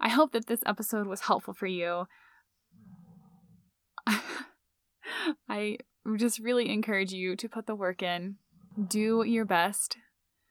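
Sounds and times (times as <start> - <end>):
speech: 0.1 - 2.3, 5.1 - 10.0
dog snoring: 2.7 - 3.7.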